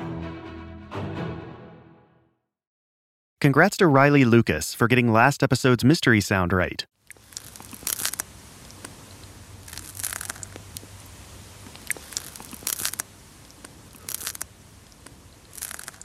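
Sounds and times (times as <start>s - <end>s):
speech: 3.4s - 7.0s
low steady hiss: 7.0s - 16.0s
snail eating a piece of lettuce in an anechoic chamber: 7.0s - 16.0s.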